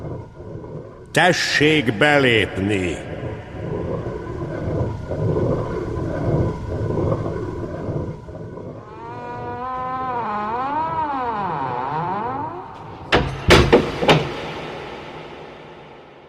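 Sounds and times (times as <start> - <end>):
rumbling wash of noise from a huge castle gate: 0.0 - 16.2
speech: 1.2 - 3.1
huge castle gate creaking with a long groaning creak: 8.8 - 14.4
heavy thuds of a huge castle gate shutting: 13.1 - 15.0.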